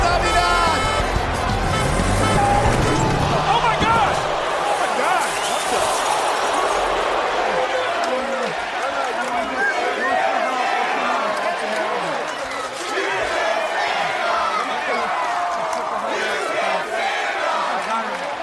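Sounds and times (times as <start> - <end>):
wrestling arena crowd roaring, shouting and cheering: 0.0 - 18.4
car engine rumbling as a car drives into a wrestling arena: 1.0 - 4.6.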